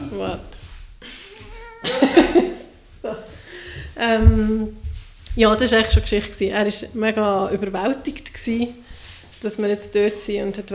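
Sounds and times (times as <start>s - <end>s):
rustling: 0.0s - 7.6s, 8.2s - 10.7s
speech: 0.1s - 1.2s, 1.8s - 2.5s, 4.0s - 4.8s, 5.4s - 8.8s, 9.4s - 10.7s
breathy human laughter: 1.0s - 3.2s
cat meowing: 1.3s - 2.0s.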